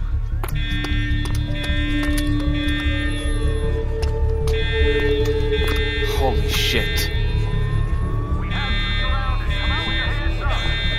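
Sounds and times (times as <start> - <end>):
high-pitched electronic alarm blaring: 0.5 - 10.9
indistinct voices: 4.7 - 10.9.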